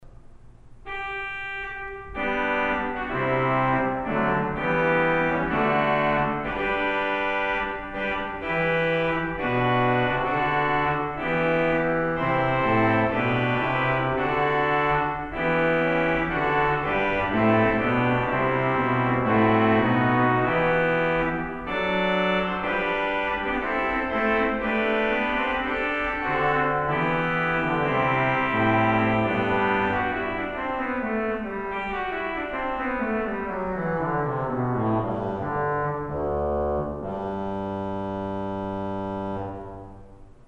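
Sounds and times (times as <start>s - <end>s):
trumpet in D: 0.9s - 40.2s.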